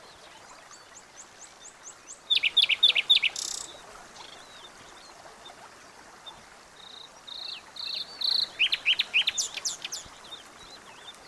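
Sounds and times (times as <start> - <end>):
constant background hiss: 0.0 - 11.2
common nightingale Luscinia megarhynchos singing: 1.9 - 4.5, 6.9 - 11.2.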